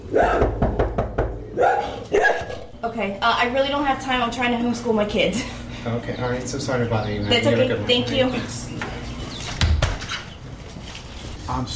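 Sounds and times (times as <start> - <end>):
small dogs yapping at front doors of homes: 0.0 - 0.5, 1.5 - 2.7
knocking on a door: 0.3 - 1.6
speech: 3.0 - 8.8, 11.5 - 11.7.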